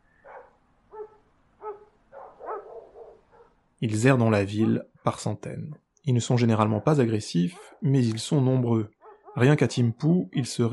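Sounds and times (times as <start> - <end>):
stray dogs barking at night: 0.2 - 3.6, 4.5 - 5.0, 6.6 - 8.0, 9.0 - 9.5
speech: 3.8 - 10.7.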